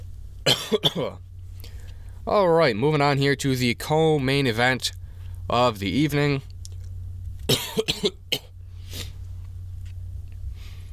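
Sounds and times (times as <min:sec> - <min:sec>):
steady low hum: 0:00.0 - 0:10.9
harsh coughs: 0:00.5 - 0:01.2, 0:07.5 - 0:08.5
speech: 0:00.5 - 0:01.3, 0:02.3 - 0:06.5.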